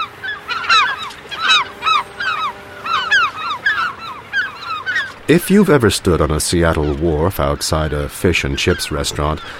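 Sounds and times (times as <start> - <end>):
chorus of gulls mewing and squealing: 0.0 - 9.5
speech: 5.3 - 9.5.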